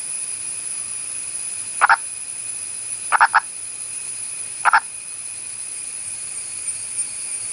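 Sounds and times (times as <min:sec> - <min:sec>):
steady high hiss: 0:00.0 - 0:07.5
purple frog calling in short clucking pulses: 0:01.8 - 0:02.1, 0:03.1 - 0:03.5, 0:04.6 - 0:04.9.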